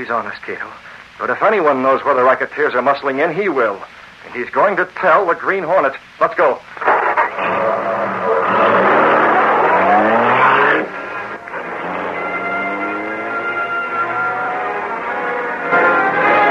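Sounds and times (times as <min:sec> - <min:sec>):
speech: 0:00.0 - 0:07.7
car engine roaring at high speed: 0:06.8 - 0:16.4.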